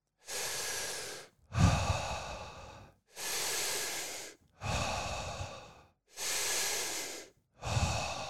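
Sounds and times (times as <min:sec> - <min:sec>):
steady rhythmic mouth breathing: 0:00.2 - 0:08.2.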